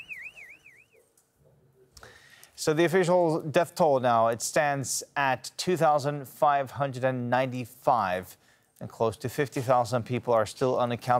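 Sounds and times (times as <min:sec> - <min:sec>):
warbling electronic building collapse warning alarm at a rescue site in Playa Grande: 0:00.0 - 0:01.0
speech: 0:02.6 - 0:11.1.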